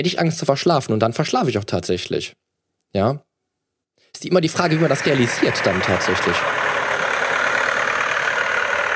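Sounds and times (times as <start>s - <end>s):
speech: 0.0s - 3.3s, 4.1s - 6.6s
tractor engine rumbling: 4.5s - 8.9s.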